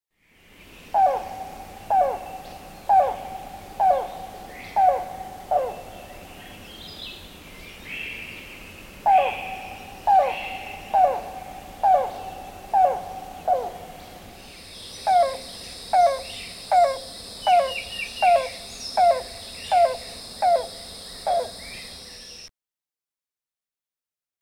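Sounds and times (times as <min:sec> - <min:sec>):
yellow-billed cuckoo coo call: 0:00.9 - 0:06.4, 0:09.0 - 0:14.3, 0:15.0 - 0:21.7.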